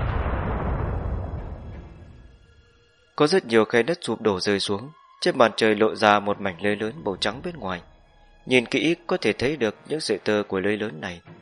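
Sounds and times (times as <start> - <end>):
huge explosion booming down from the sky: 0.0 - 2.6
speech: 3.2 - 11.3.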